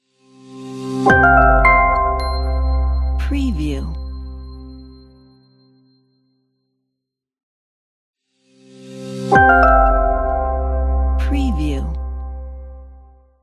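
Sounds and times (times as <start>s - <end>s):
friendly logo jingle: 1.1s - 5.8s, 9.4s - 13.1s.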